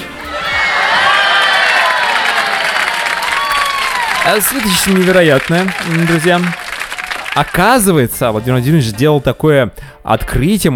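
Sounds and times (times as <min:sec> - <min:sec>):
large audience cheering and shouting: 0:00.0 - 0:07.8
large audience clapping: 0:00.0 - 0:08.0
speech: 0:04.2 - 0:06.6, 0:07.4 - 0:10.7.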